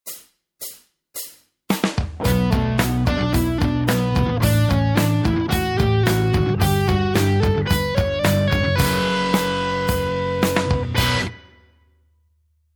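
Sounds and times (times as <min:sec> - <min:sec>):
guitar playing hammer-ons pull-offs: 0:02.2 - 0:11.6.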